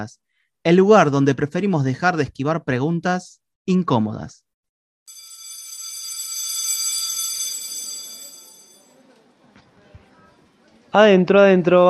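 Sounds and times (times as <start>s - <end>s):
speech: 0.0s - 4.4s, 10.9s - 11.8s
loud electric school bell ringing to mark the end of recess: 5.1s - 9.0s
faint murmur: 8.8s - 11.0s.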